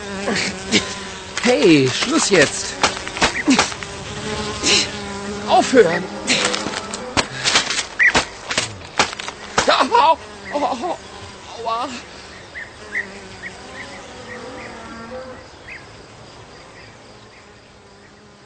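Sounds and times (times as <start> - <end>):
flies buzzing: 0.0 - 18.4
speech: 0.2 - 0.9, 1.5 - 2.8, 5.5 - 6.4, 10.1 - 12.1
sharp knocks: 1.9 - 3.9, 6.6 - 9.9.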